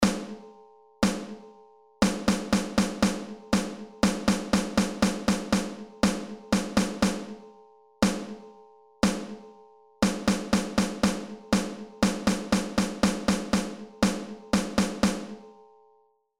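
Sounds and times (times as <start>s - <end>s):
snare drum rhythms: 0.0s - 0.4s, 1.0s - 1.4s, 2.0s - 7.4s, 8.0s - 8.4s, 9.0s - 9.4s, 10.0s - 15.4s.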